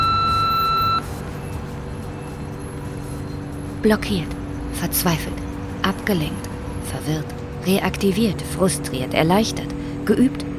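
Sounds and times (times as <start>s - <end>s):
electronic voicemail answering machine beep tone: 0.0s - 1.0s
speech: 3.8s - 10.5s.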